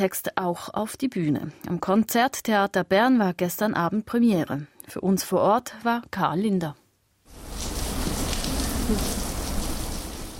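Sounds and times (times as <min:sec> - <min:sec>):
speech: 0:00.0 - 0:06.8, 0:08.9 - 0:09.2
heavy rain pouring down: 0:07.3 - 0:10.3.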